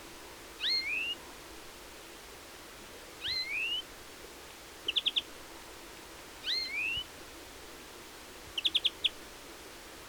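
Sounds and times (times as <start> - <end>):
European greenfinch Chloris chloris rising whistled calls: 0.6 - 1.2, 3.2 - 3.8, 4.9 - 5.2, 6.4 - 7.0.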